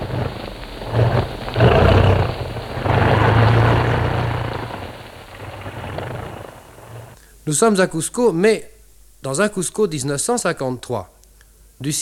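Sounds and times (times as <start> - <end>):
propeller airplane engine droning while turning and landing at Cusco: 0.0 - 7.2
speech: 7.5 - 11.2, 11.8 - 12.0.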